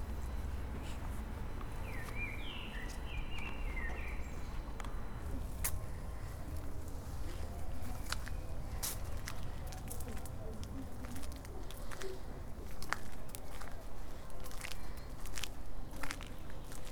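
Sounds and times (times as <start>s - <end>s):
short rising bird calls in a cemetery: 0.0s - 5.1s
faint murmuring voices: 0.0s - 16.8s
crunching steps in a cemetery: 0.0s - 16.9s.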